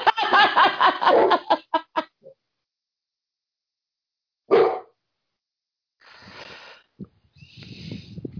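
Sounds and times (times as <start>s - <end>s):
laughter: 0.0s - 2.1s
dog barking: 1.0s - 1.5s, 4.5s - 5.0s.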